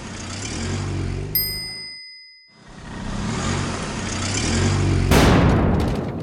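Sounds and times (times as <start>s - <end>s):
car engine rumbling: 0.0s - 6.2s
bright metallic ding: 1.4s - 2.7s.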